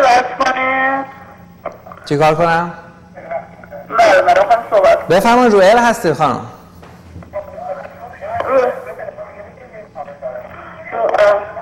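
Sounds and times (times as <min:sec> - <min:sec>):
television playing in background during phone call: 0:00.0 - 0:06.2, 0:07.2 - 0:11.6
speech: 0:02.1 - 0:02.8, 0:03.9 - 0:06.5.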